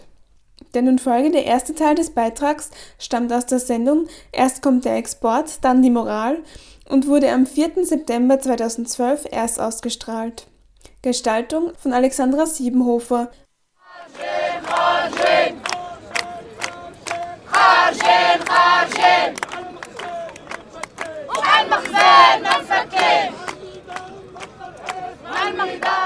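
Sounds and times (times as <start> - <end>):
speech: 0.7 - 13.4
large protest crowd chanting at a demonstration: 13.8 - 26.0
sharp claps or beats punctuating the chant: 14.1 - 26.0.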